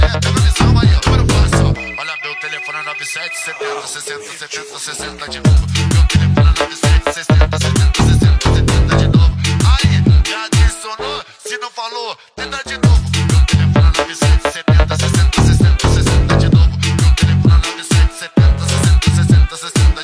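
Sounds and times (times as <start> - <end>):
loud driving music: 0.0 - 11.7, 12.4 - 20.0
telephone ringing with a trilling electronic burst: 1.8 - 4.8.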